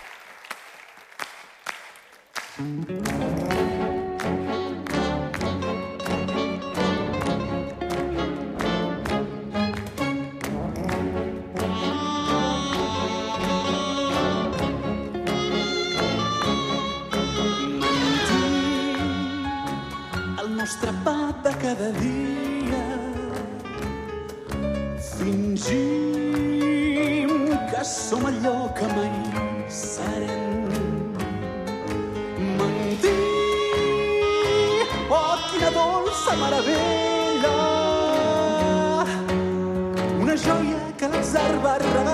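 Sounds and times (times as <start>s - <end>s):
scattered clapping: 0.0s - 11.8s
speech: 2.6s - 3.8s, 28.1s - 30.4s
live band playing tango in concert: 2.6s - 42.1s.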